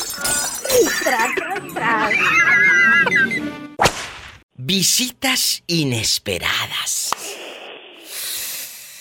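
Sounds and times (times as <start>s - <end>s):
laughter: 0.8s - 3.5s
speech: 4.7s - 7.0s
breathy hiss: 8.0s - 9.0s.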